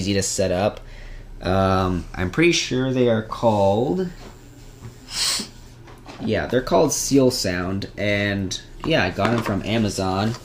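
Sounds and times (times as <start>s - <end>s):
speech: 0.0s - 4.2s, 5.1s - 5.5s, 6.2s - 10.4s
nose blowing: 5.0s - 5.7s.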